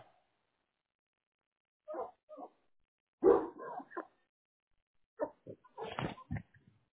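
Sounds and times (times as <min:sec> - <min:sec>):
puppy barking and yipping while being fed: 0:01.9 - 0:02.5, 0:03.2 - 0:04.1.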